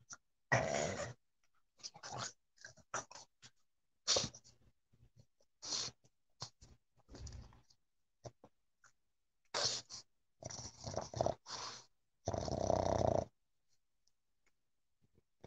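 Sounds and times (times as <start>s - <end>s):
dog growling and huffing while playing: 0.5s - 1.2s, 10.4s - 13.3s.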